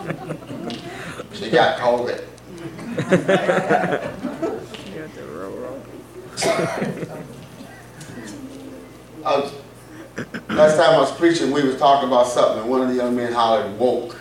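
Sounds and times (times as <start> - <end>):
people chuckling lightly: 0.0 - 1.6, 2.6 - 11.2
murmur of voices: 0.0 - 13.6
speech: 1.4 - 2.3, 3.0 - 4.3, 6.4 - 7.3, 9.2 - 9.6, 10.6 - 14.1
person coughing: 6.3 - 8.4.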